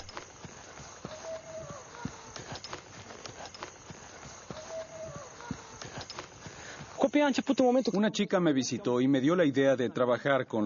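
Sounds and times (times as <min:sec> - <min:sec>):
horse hooves clip-clopping at a walking pace: 0:00.0 - 0:07.6
speech: 0:07.0 - 0:10.6.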